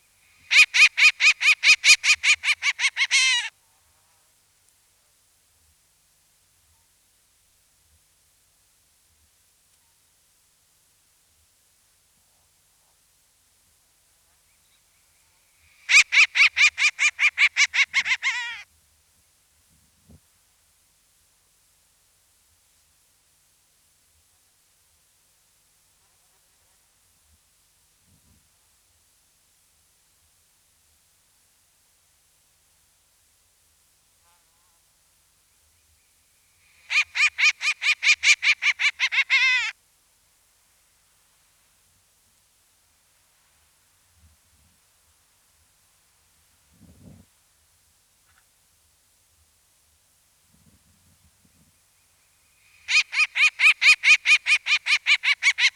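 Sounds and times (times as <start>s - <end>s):
Short-eared Owl calling: 0.4s - 3.5s, 15.7s - 18.6s, 36.7s - 39.7s, 52.6s - 55.7s.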